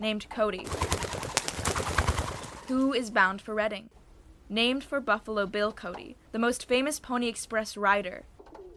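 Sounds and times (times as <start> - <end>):
speech: 0.0 - 1.2, 2.7 - 8.3
fluttery rustling: 0.6 - 3.1
pigeons cooing: 0.7 - 2.9
hiss: 0.7 - 3.3.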